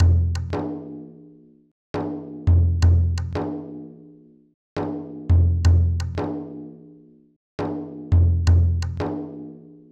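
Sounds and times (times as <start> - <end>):
dholak drum loop: 0.0 - 1.1, 2.0 - 3.9, 4.8 - 6.8, 7.6 - 9.7.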